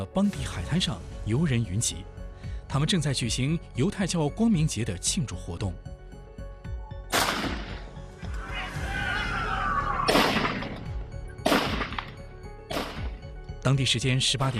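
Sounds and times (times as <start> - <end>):
speech: 0.0 - 6.0, 13.7 - 14.5
sharp loud gunshots: 7.1 - 7.9, 10.1 - 13.2
raised voices: 8.2 - 10.1.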